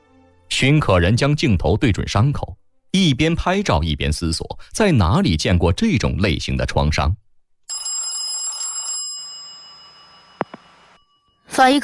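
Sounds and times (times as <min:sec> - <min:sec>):
speech: 0:00.6 - 0:07.2, 0:11.6 - 0:11.8
telephone ringing: 0:07.7 - 0:11.8.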